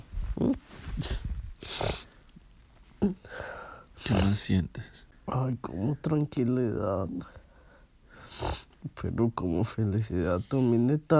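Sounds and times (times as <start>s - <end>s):
dogs waiting for someone snorting and sniffing: 0.2s - 2.2s
speech: 4.5s - 7.4s, 8.4s - 11.1s.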